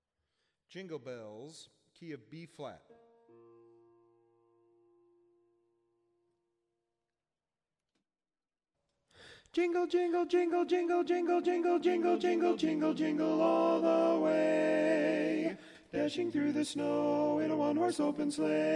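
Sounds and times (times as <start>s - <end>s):
tenor singing a Christmas song: 9.5s - 18.7s.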